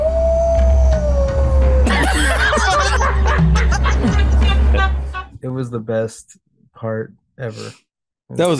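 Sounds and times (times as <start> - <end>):
voice imitating a dinosaur howling at the moon: 0.0 - 1.9
people laughing: 1.8 - 5.2
speech: 5.5 - 8.5.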